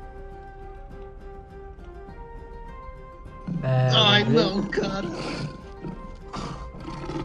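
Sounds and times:
saber-toothed tiger roar: 3.5 - 7.2
speech: 3.6 - 5.6.

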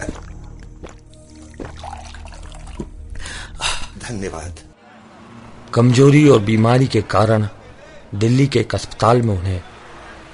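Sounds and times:
water pouring into a glass to drink: 1.3 - 2.9
speech: 4.1 - 4.7, 5.7 - 9.7.

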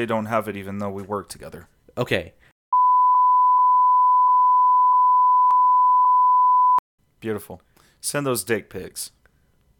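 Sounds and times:
speech: 0.0 - 2.5, 7.2 - 9.2
censor bleep tone: 2.7 - 6.8.

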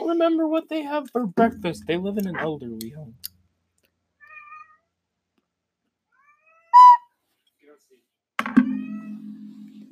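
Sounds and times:
speech: 0.1 - 3.4
cat meowing loudly: 4.2 - 4.9, 6.1 - 7.0.

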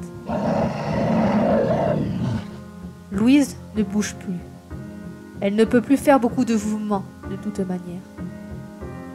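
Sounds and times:
distant beast roaring likely a bear: 0.2 - 2.6
speech: 3.1 - 4.5, 5.4 - 8.2.

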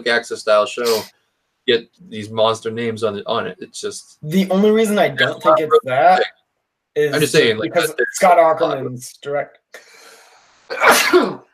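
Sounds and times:
speech: 0.0 - 6.4, 7.0 - 9.9, 10.7 - 11.4
sneeze: 10.7 - 11.5.

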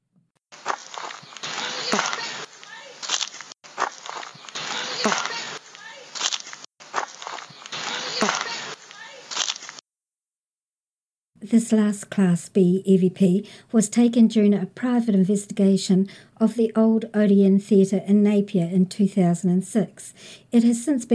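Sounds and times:
footsteps walking through dry autumn leaves: 0.5 - 9.8
speech: 5.0 - 5.3, 8.2 - 8.5, 11.5 - 21.1.

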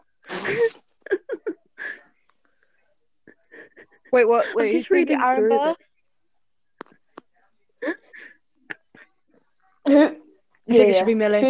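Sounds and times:
person sneezing: 0.3 - 0.9
speech: 0.5 - 0.8, 4.1 - 5.8, 10.8 - 11.4.

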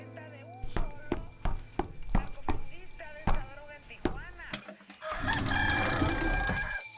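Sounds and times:
voices: 0.6 - 6.9
neighbour's rooster crowing: 5.0 - 6.9.

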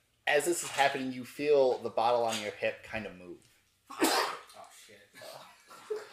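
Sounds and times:
speech: 0.3 - 4.2
sneeze: 3.9 - 4.6.

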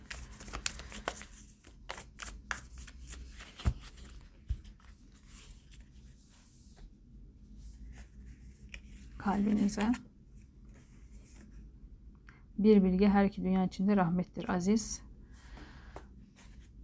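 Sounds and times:
tarot cards being shuffled and drawn by hand: 0.0 - 6.9, 7.9 - 11.5
low steady noise: 0.0 - 16.8
speech: 9.2 - 10.1, 12.6 - 15.1.

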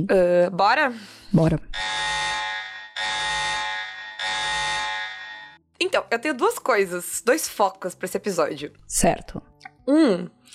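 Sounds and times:
speech: 0.0 - 2.3, 5.9 - 10.5
loud harsh alarm buzzer: 1.8 - 5.6.

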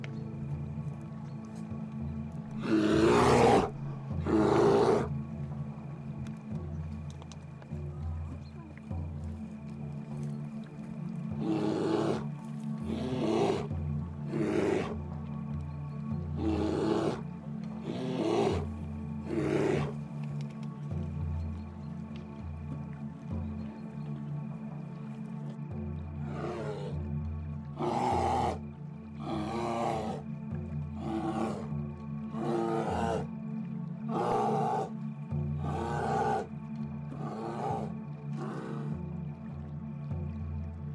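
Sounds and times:
steady low droning background: 0.0 - 40.9
female bear roaring: 2.6 - 5.1, 11.4 - 13.7, 14.3 - 15.0, 16.4 - 20.0, 26.2 - 27.0, 27.8 - 28.6, 29.2 - 30.3, 30.9 - 33.3, 34.1 - 35.0, 35.6 - 36.5, 37.1 - 39.0.

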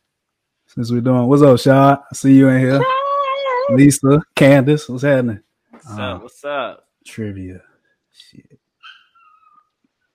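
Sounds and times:
speech: 0.7 - 3.0, 3.7 - 8.6
dog whining and whimpering: 2.7 - 4.0, 8.8 - 9.8.

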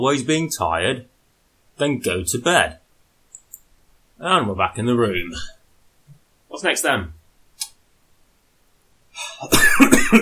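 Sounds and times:
speech: 0.0 - 1.1, 1.8 - 2.8, 4.2 - 5.6, 6.6 - 7.2, 9.2 - 10.2
person coughing heavily: 9.2 - 10.2.

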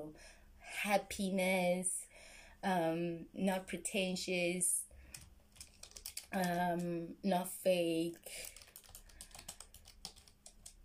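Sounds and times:
speech: 0.0 - 4.8, 6.3 - 8.6
rapid typing on a computer keyboard: 5.1 - 6.9, 8.2 - 10.8.

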